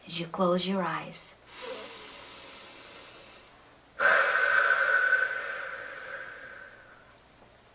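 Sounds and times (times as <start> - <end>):
speech: 0.2 - 1.4
inhale through the nose during a relaxation exercise: 1.5 - 7.2
rush of air breathed out during a relaxation exercise: 1.6 - 7.1.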